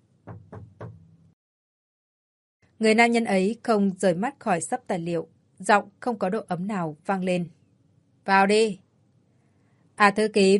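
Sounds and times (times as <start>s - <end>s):
firm knocks on an office door: 0.2s - 1.2s
speech: 2.8s - 7.6s, 8.2s - 8.8s, 10.0s - 10.5s.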